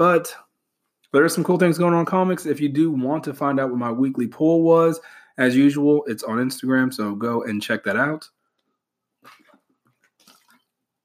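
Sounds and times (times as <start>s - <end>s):
speech: 0.0s - 0.4s, 1.1s - 8.4s
person drinking water with gulps and slurping swallows: 9.2s - 11.0s.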